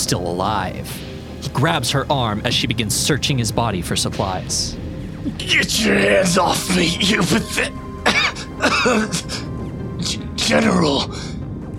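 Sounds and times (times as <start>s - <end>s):
speech: 0.0s - 7.8s, 8.6s - 9.5s, 10.1s - 11.3s
wounded soldier coughing: 6.7s - 11.1s.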